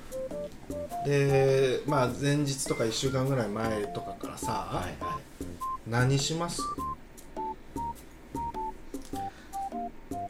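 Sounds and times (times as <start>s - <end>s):
mobile phone ringing with a beeping melodic tone: 0.2s - 1.6s, 2.7s - 5.8s, 6.6s - 10.2s
speech: 1.0s - 5.2s, 5.9s - 6.8s.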